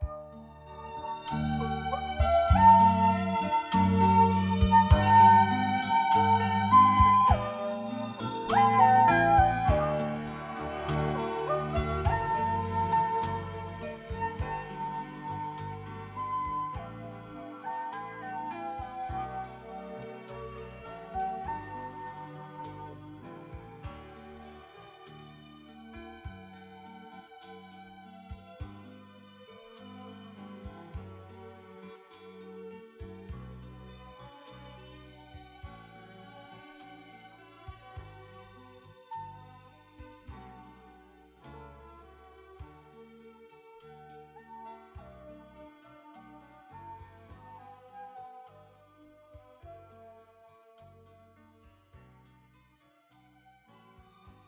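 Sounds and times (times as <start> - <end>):
strings pad: 0.0 - 42.4.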